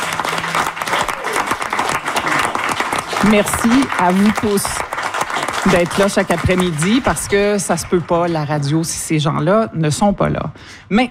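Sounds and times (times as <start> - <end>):
audience applause for a radio programme's production team: 0.0 - 8.7
speech: 3.2 - 4.9, 5.6 - 11.0.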